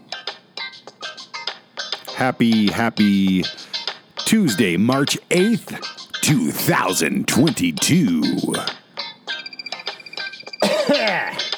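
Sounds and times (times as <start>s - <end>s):
speech: 2.2s - 3.6s, 4.3s - 8.8s
small cough with throat clearing: 10.6s - 11.5s.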